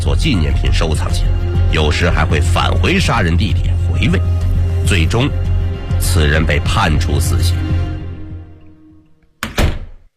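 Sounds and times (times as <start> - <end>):
speech: 0.1 - 5.4, 6.0 - 7.7
office door swinging shut with a heavy thunk: 9.4 - 10.1.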